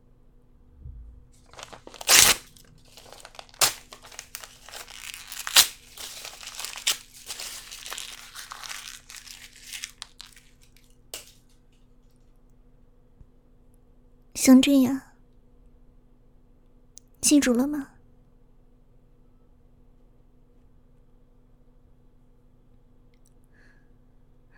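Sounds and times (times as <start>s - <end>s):
love letter paper tearing: 1.5s - 11.4s
speech: 14.5s - 15.0s, 17.3s - 18.0s.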